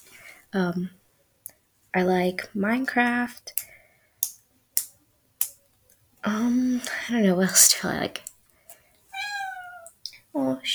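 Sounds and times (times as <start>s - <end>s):
speech: 0.5s - 1.0s, 2.0s - 3.7s, 6.2s - 8.3s, 10.4s - 10.7s
pet cat meowing in a bedroom: 9.1s - 10.0s.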